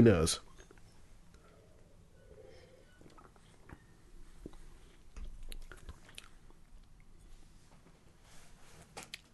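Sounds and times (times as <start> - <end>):
speech: 0.0 - 0.5
person sipping mixed beer: 1.4 - 6.7.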